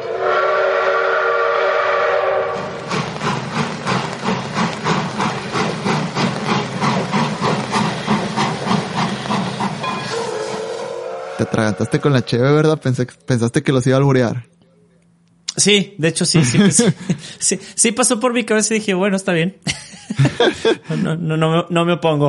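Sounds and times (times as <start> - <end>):
steam train whistle: 0.0 - 2.9, 9.8 - 12.6
steam train hissing chuffs: 0.0 - 12.9
speech: 11.6 - 14.6, 15.6 - 22.2
laughter: 16.4 - 17.3, 19.7 - 21.1.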